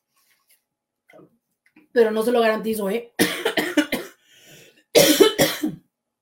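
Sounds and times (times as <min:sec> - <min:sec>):
speech: 0:01.2 - 0:03.3
person coughing harshly: 0:03.2 - 0:04.2, 0:05.0 - 0:05.8
faint breath: 0:04.2 - 0:04.8.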